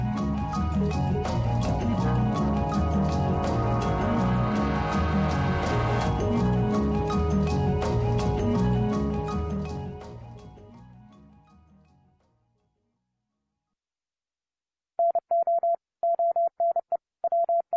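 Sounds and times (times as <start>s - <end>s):
music: 0.0s - 13.4s
Morse code beeps in a single-pitched tone: 15.0s - 17.7s.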